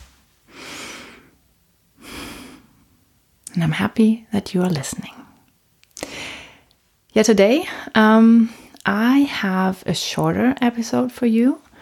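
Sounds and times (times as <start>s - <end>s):
deep slow breath: 0.0s - 1.4s, 2.0s - 3.0s, 6.0s - 6.7s
speech: 3.6s - 5.2s, 7.1s - 11.6s.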